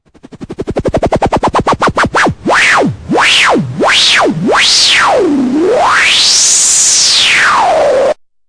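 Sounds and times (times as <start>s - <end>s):
analog synthesizer noise sweeps: 0.1s - 8.2s.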